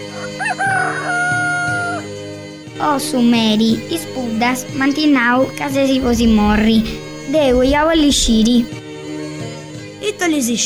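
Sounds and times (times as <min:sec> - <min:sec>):
rooster crowing: 0:00.4 - 0:02.0
speech: 0:02.8 - 0:08.8, 0:10.2 - 0:10.6.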